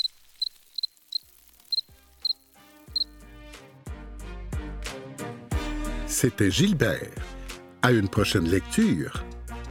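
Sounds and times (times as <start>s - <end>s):
crickets chirping: 0.0s - 3.1s
speech: 6.1s - 9.3s.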